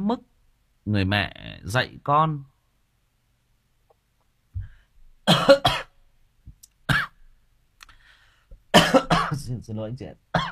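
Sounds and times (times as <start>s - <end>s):
speech: 0.1s - 2.5s, 5.3s - 5.9s, 9.4s - 10.5s
person coughing: 5.3s - 6.0s, 8.8s - 9.4s, 10.4s - 10.5s.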